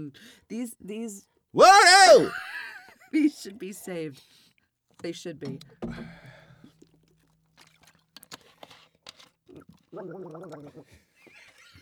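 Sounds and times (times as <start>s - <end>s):
speech: 0.0s - 4.4s, 5.0s - 6.2s, 10.0s - 11.0s
person gargling: 1.6s - 2.3s.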